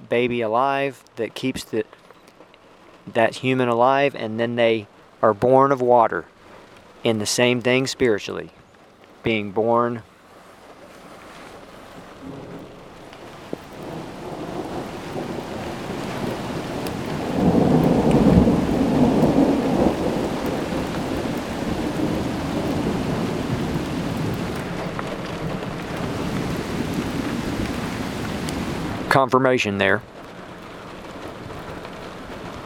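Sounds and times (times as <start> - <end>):
steady rain falling on surfaces during a thunderstorm: 0.0 - 32.6
speech: 0.1 - 2.0, 3.1 - 6.3, 7.0 - 8.6, 9.2 - 10.1, 29.2 - 30.1
thunder rumbling during a thunderstorm: 12.1 - 32.6.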